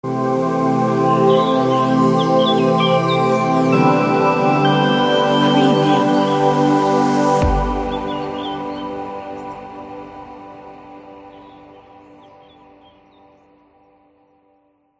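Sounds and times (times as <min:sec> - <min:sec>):
fairy forest logo jingle: 0:01.0 - 0:11.3.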